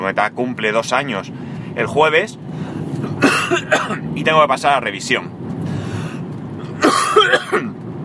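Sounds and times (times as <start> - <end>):
speech: 0.0 - 5.4
short throaty coughs: 3.1 - 4.0, 6.8 - 7.8.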